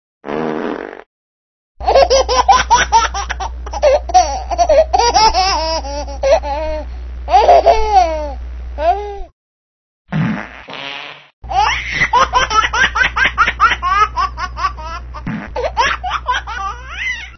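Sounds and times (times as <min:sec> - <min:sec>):
baby farting: 0:00.2 - 0:01.1, 0:10.1 - 0:11.3, 0:15.2 - 0:15.7
baby laughing: 0:01.8 - 0:09.0, 0:11.5 - 0:17.3.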